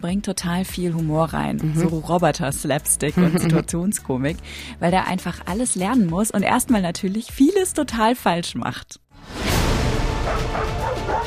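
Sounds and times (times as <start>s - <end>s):
speech: 0.0s - 9.4s
laughter: 3.1s - 3.7s
dog barking: 10.2s - 11.2s.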